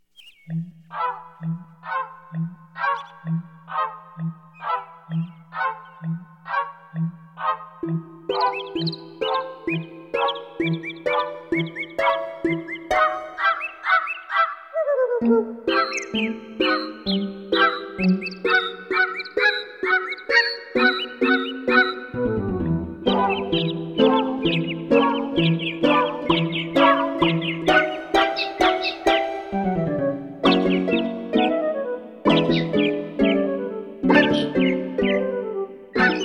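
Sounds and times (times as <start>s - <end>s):
segments of actual bird songs chirping: 0.0s - 36.2s
instrumental traditional holiday melody: 7.8s - 14.0s, 15.2s - 36.2s.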